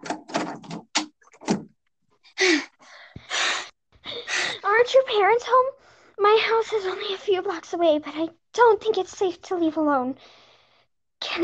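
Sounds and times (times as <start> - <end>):
door being pushed shut: 0.0 - 1.7
quick breathy gasps: 2.4 - 4.7
speech: 4.9 - 10.4.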